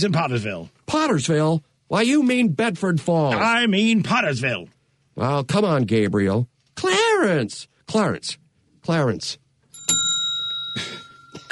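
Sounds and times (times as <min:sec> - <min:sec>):
speech: 0:00.0 - 0:10.0
small bell ringing: 0:09.7 - 0:11.5.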